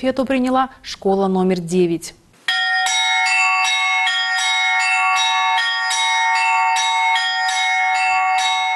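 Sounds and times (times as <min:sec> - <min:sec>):
speech: 0:00.0 - 0:02.2
church bells ringing: 0:02.5 - 0:08.7.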